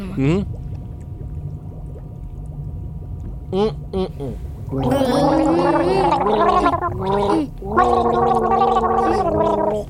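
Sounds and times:
people gargling water to the melody of a children's song: 0:03.6 - 0:09.8.

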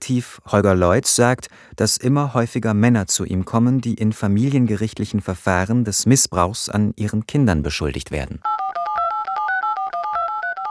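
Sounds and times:
speech: 0:00.1 - 0:08.6
telephone tones beeping as a call is placed: 0:08.5 - 0:10.7.

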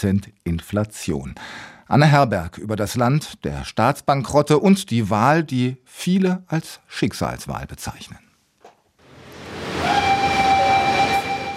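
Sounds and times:
speech: 0:00.0 - 0:08.2
subway train on Line D rumbling through a tunnel in Buenos Aires Argentina: 0:09.1 - 0:11.5
high steady metallic whine and squeal of subway train: 0:09.7 - 0:11.5.

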